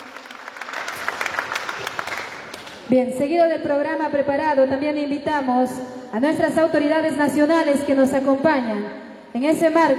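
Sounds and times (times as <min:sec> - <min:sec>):
audience applause at a 31st anniversary celebration in Villa Tunari: 0:00.0 - 0:02.8
speech: 0:02.9 - 0:09.9.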